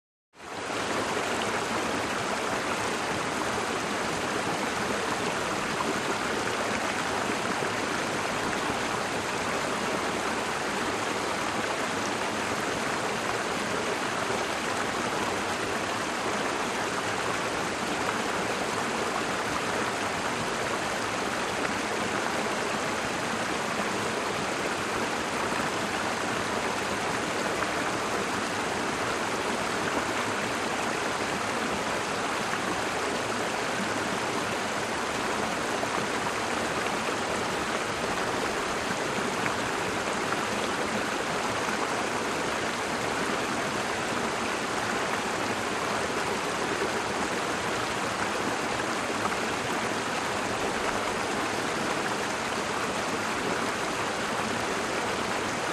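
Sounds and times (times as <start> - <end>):
river flowing medium to fast: 0.4 - 55.7.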